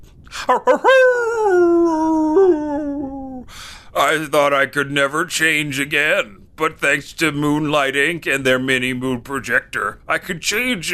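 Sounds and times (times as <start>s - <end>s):
speech: 0.5s - 3.2s, 4.0s - 10.9s
man imitating a werewolf howl: 0.5s - 3.4s.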